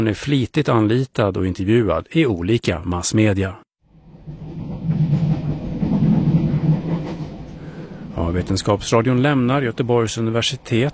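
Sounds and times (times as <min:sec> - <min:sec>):
speech: 0:00.0 - 0:03.6, 0:08.3 - 0:10.9
faint rattling inside a moving passenger train: 0:03.9 - 0:10.9
moving passenger train interior rumble: 0:03.9 - 0:10.9.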